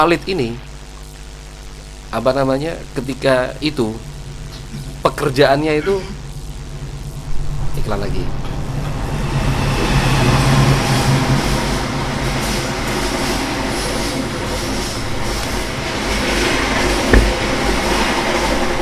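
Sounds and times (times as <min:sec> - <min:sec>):
speech: 0:00.0 - 0:00.7, 0:02.1 - 0:04.1, 0:05.1 - 0:06.2, 0:07.9 - 0:08.5
train passing at a railway station: 0:07.5 - 0:18.8
sharp knock: 0:17.1 - 0:17.5.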